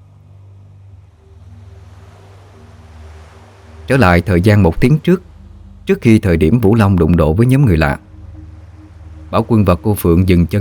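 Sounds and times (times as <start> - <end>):
faint droning hum: 0.0 - 10.5
water churning and foaming around a rocking boat: 0.0 - 10.5
speech: 3.9 - 5.3, 5.9 - 8.0, 9.3 - 10.5.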